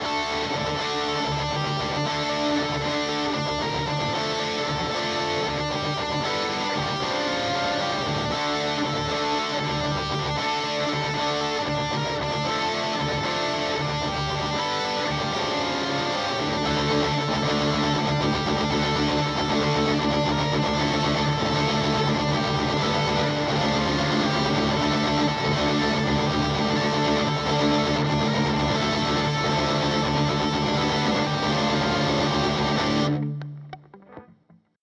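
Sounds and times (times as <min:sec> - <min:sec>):
high gain guitar through Boss GT-1000 Core effects processor: 0:00.0 - 0:34.8.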